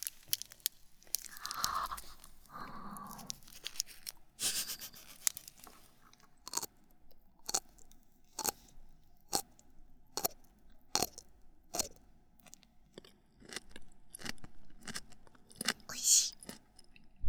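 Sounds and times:
rustling: 0.0 - 5.9
crunchy ume shiso flavored snack being chewed: 0.0 - 17.1.

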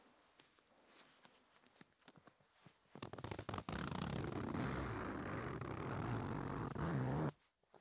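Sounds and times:
soft clicks and rustles: 0.2 - 3.6
long zipper on a full-body mascot costume being pulled: 3.0 - 7.4.

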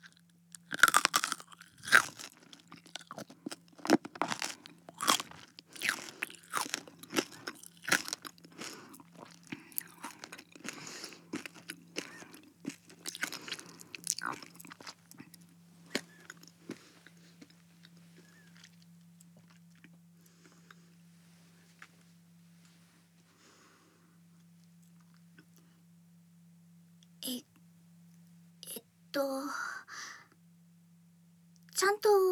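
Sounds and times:
crunchy biting and chewing of food: 0.0 - 20.7
faint low hum: 0.0 - 32.3.

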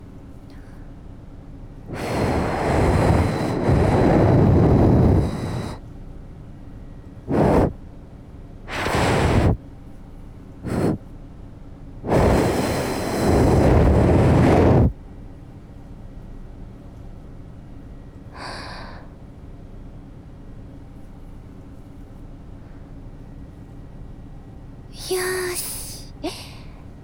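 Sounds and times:
breath blown onto a microphone during an ear-cleaning roleplay: 1.9 - 5.8, 7.3 - 7.8, 8.7 - 9.6, 10.7 - 11.0, 12.1 - 14.9, 25.0 - 26.8.

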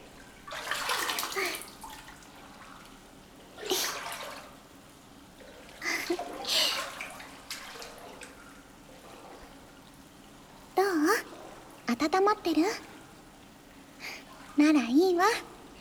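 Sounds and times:
hot water poured over a person sitting in a bath: 0.2 - 4.8, 5.4 - 9.9
speech: 12.3 - 12.9, 14.6 - 15.5.

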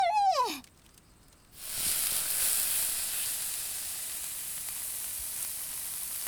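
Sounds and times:
supermarket meat sizzling on a grill: 1.6 - 6.2.

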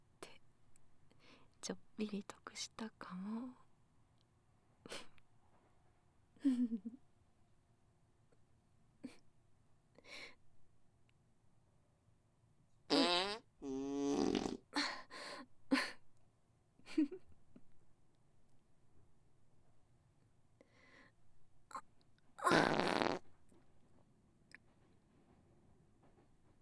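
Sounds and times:
speech: 1.7 - 3.7
sputtering fart: 12.9 - 14.7, 22.4 - 23.3.

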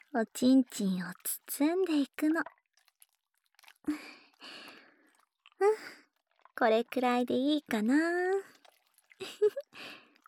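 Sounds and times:
body soap being worked into a lather in the hands: 0.0 - 10.2
speech: 0.1 - 2.6, 3.8 - 4.7, 5.6 - 6.0, 6.6 - 8.5, 9.2 - 10.0.

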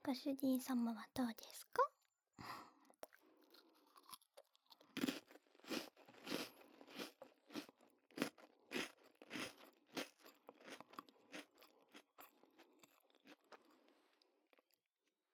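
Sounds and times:
speech: 0.1 - 2.7
crunching while eating sweets: 2.8 - 14.8.

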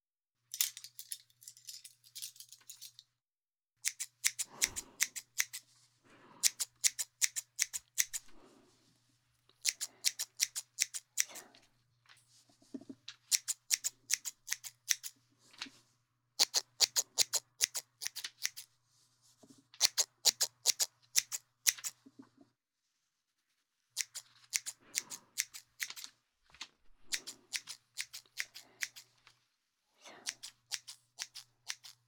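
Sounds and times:
scissors thinning out a thick head of hair: 3.8 - 5.6, 6.4 - 8.4, 9.6 - 11.4, 13.3 - 15.2, 16.4 - 18.7, 19.8 - 22.0, 24.0 - 26.1, 27.0 - 29.1, 30.2 - 32.0.

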